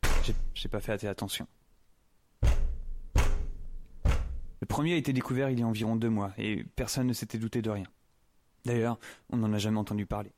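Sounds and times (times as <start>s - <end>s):
speech: 0.2s - 1.6s, 4.6s - 8.0s, 8.6s - 10.3s
heavy knocks on a door: 2.4s - 4.6s.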